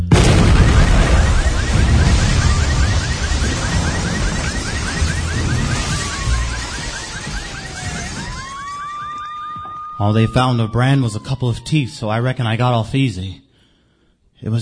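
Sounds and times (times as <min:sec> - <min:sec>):
loud explosion with deep rumbling low end: 0:00.0 - 0:08.6
faint whistling and crackling debris: 0:00.0 - 0:10.4
speech: 0:10.0 - 0:13.4, 0:14.4 - 0:14.6.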